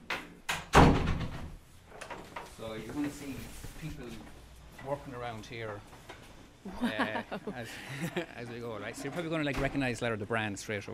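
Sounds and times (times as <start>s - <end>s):
green door swinging shut with a solid thunk at a distribution centre: 0.5s - 1.6s
speech: 2.6s - 6.0s, 6.6s - 10.9s
laughter: 6.7s - 8.5s.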